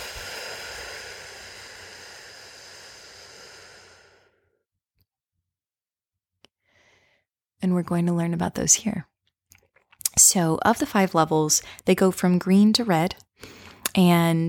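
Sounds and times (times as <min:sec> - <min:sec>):
deep breath in and out: 0:00.0 - 0:04.6
speech: 0:07.6 - 0:09.1, 0:10.2 - 0:14.4.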